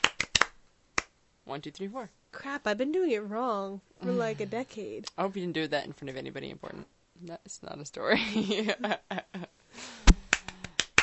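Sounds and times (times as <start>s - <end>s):
sharp rhythmic hand claps: 0.0s - 1.1s, 10.1s - 11.0s
speech: 1.5s - 9.5s.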